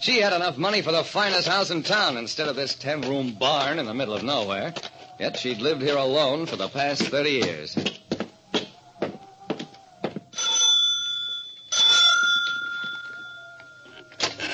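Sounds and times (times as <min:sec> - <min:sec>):
speech: 0:00.0 - 0:08.0
doorbell of a big lonely ten-room house ringing: 0:10.3 - 0:14.4.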